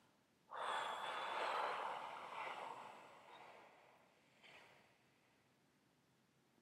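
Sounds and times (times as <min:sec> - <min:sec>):
slow exhalation during a breathing exercise: 0:00.5 - 0:03.8
soft puff of air: 0:00.5 - 0:03.8.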